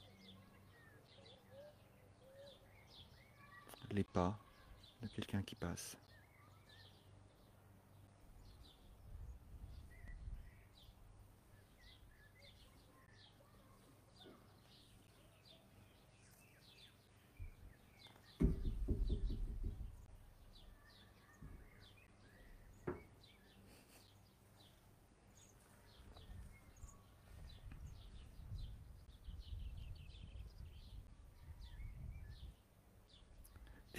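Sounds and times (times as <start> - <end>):
faint bird song with high chirps: 0.0 - 9.1, 9.7 - 33.9
speech: 3.9 - 4.4, 5.0 - 6.1
soft thump: 18.4 - 20.1.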